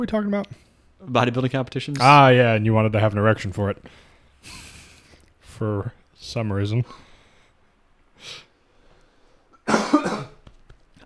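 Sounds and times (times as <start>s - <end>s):
speech: 0.0s - 4.6s, 5.6s - 7.1s, 8.2s - 8.5s
person coughing: 9.6s - 10.4s.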